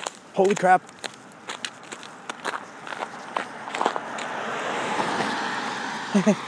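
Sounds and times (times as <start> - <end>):
footsteps crunching on an unshoveled slippery path: 0.0 - 4.6
car passing with road hiss: 0.0 - 6.4
speech: 0.4 - 1.0, 6.2 - 6.4.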